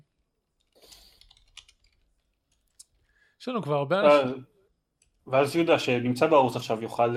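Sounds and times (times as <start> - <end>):
typing on a computer keyboard: 0.6 - 2.8
speech: 3.4 - 4.5, 5.3 - 7.1.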